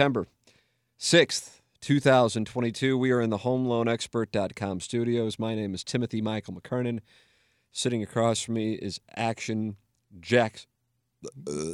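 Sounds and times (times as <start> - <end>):
speech: 0.0 - 0.4, 1.0 - 11.7
loud belch: 11.2 - 11.7.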